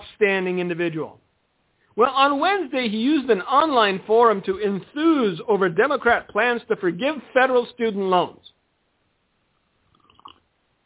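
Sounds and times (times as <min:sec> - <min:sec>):
speech: 0:00.2 - 0:01.2, 0:02.0 - 0:08.5
sipping a drink: 0:09.6 - 0:10.5.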